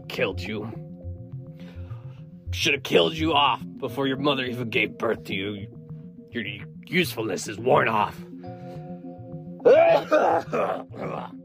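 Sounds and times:
speech: 0.1 - 0.9, 2.5 - 8.3, 9.6 - 11.4
harsh hacking coughs: 9.6 - 11.4.

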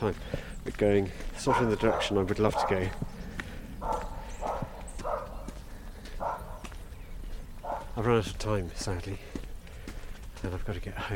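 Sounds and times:
speech: 0.0 - 3.1, 8.0 - 9.3, 10.4 - 11.1
dog barking: 1.4 - 6.9, 7.6 - 8.0.

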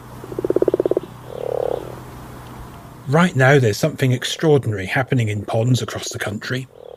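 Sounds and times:
faint steady hum: 0.0 - 6.9
common frog croaking: 0.2 - 2.0, 6.7 - 6.9
speech: 3.1 - 6.8.

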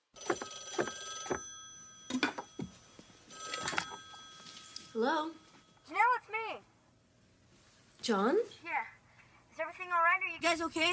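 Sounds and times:
telephone ringing in trilling bursts: 0.0 - 6.1
speech: 5.0 - 6.7, 8.0 - 9.0, 9.6 - 10.9.

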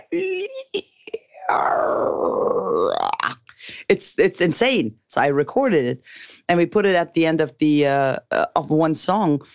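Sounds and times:
speech: 0.1 - 0.9, 3.9 - 9.5
voice imitating a creaking door: 1.2 - 3.6.

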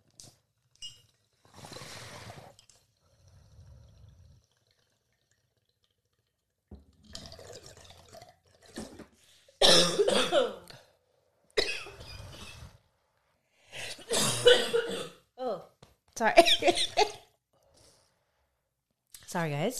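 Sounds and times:
hard harsh raspy coughing: 9.6 - 10.6, 11.6 - 12.6, 13.9 - 15.2
speech: 16.2 - 17.1, 19.4 - 19.7.

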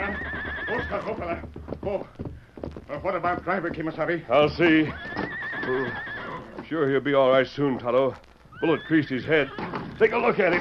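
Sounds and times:
stagecoach horses whinnying and neighing: 0.0 - 1.6, 4.6 - 6.7, 8.5 - 10.6
stagecoach horses snorting: 0.0 - 6.7, 9.3 - 10.6
horse hooves clopping and shuffling: 0.0 - 10.6
speech: 0.9 - 2.3, 2.9 - 6.1, 6.7 - 10.6.

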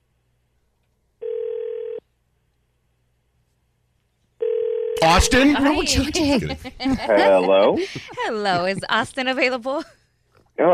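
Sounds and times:
electronic telephone ring tones on an outgoing call: 1.2 - 2.0, 4.4 - 5.7
speech: 5.0 - 10.0
laughter: 5.1 - 9.8.

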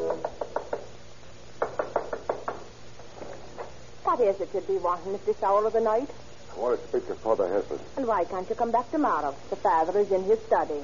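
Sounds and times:
stranger knocking on a parish priest's wooden door at night: 1.6 - 2.7
speech: 4.2 - 10.8.

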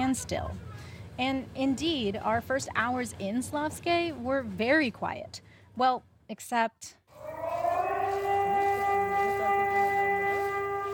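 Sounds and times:
speech: 0.1 - 7.0
air raid sirens wailing under wartime alert: 7.1 - 10.9.

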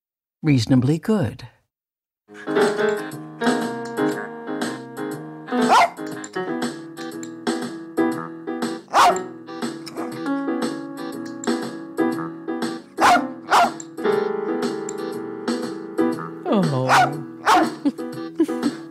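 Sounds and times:
speech: 0.4 - 1.6
rhythms played on keyboards set up on the floor: 2.3 - 18.8
steady musical backing track: 2.3 - 18.8
small blind rat terrier barking: 5.6 - 6.0, 8.9 - 9.3, 13.0 - 13.8, 16.9 - 17.8
person exclaiming: 16.5 - 17.3.

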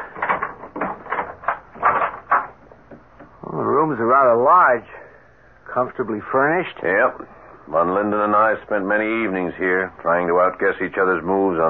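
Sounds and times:
door being pulled open: 0.0 - 3.4
keys rattling in a door lock: 0.1 - 2.6
speech: 3.9 - 5.0, 5.8 - 11.6.

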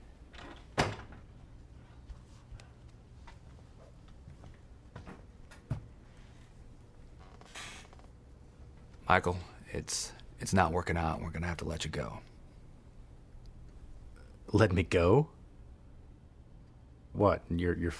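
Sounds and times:
quiet room hum: 0.0 - 17.9
door swinging shut with a solid thud: 0.4 - 1.3
faint shuffles: 1.7 - 6.7
faint creaks: 5.5 - 8.2
speech: 9.1 - 12.3, 14.5 - 15.4, 17.2 - 17.9.

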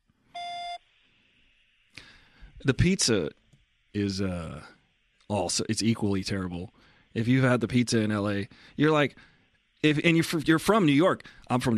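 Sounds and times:
faint hiss: 0.0 - 11.7
voicemail electronic beep tone: 0.4 - 0.8
speech: 2.6 - 11.7.

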